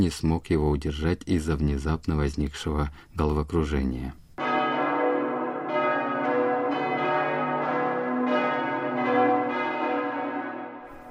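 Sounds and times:
speech: 0.0 - 4.2
church bell ringing: 4.4 - 11.0.

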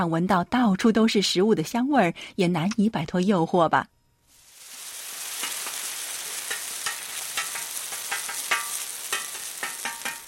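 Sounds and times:
speech: 0.0 - 4.0
buckwheat pancakes frying on a hot griddle at a market: 4.3 - 10.2
sharper pops and spatters of frying buckwheat pancakes: 4.4 - 10.2.

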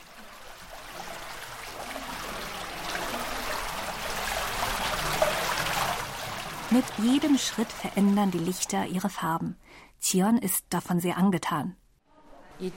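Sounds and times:
thin trickles of water down cave walls: 0.0 - 9.6
speech: 6.7 - 11.8, 12.6 - 12.7.

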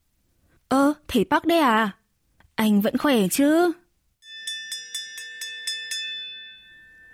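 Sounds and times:
speech: 0.7 - 2.0, 2.6 - 3.8
electric staff-room bell ringing: 4.2 - 7.1.

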